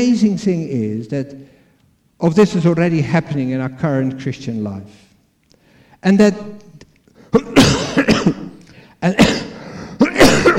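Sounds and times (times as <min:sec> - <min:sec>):
speech: 0:00.0 - 0:01.6, 0:02.2 - 0:05.0, 0:06.0 - 0:06.6, 0:07.3 - 0:07.6, 0:09.0 - 0:09.5
preacher clearing throat during a sermon: 0:07.3 - 0:10.5.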